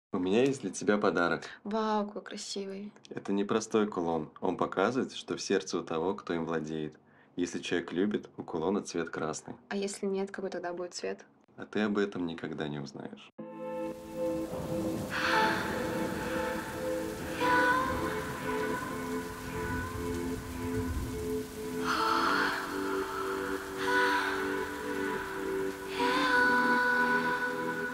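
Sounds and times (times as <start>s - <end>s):
speech: 0.1s - 13.6s
rain pouring on wet asphalt: 13.8s - 27.9s.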